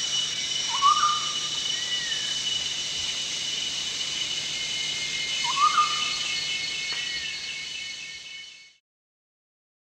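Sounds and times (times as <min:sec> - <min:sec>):
steady high buzzing background: 0:00.0 - 0:08.8
chestnut-backed scimitar babbler whistling: 0:00.7 - 0:02.4, 0:05.1 - 0:07.5.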